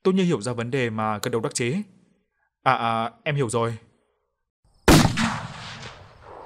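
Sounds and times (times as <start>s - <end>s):
speech: 0.0s - 2.0s, 2.6s - 3.9s
loud explosion from a scheduled blast: 4.9s - 6.4s.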